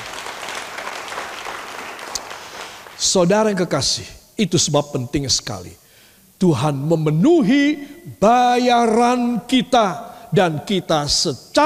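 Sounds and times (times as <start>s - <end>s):
audience applause: 0.0s - 3.0s
speech: 3.0s - 5.8s, 6.4s - 11.6s.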